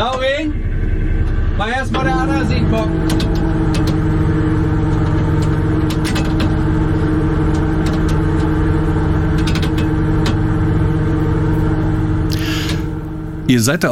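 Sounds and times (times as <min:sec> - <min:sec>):
shrimp-fishing cutter engine drone at sea in the Wadden Sea as nets are set out: 0:00.0 - 0:13.9
speech: 0:01.6 - 0:03.8, 0:13.5 - 0:13.9
faint clicks and rattles: 0:02.0 - 0:10.6.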